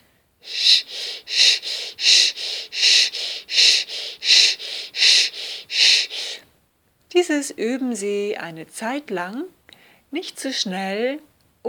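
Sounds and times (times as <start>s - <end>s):
breathing in and out through a sustained sh sound: 0.4s - 6.5s
speech: 7.2s - 11.6s.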